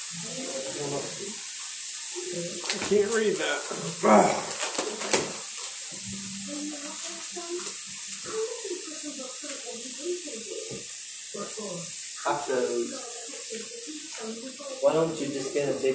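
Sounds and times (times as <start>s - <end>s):
faint voices murmuring: 0.0s - 15.9s
water running from a tap: 0.0s - 15.9s
speech: 2.3s - 5.3s, 6.1s - 15.9s.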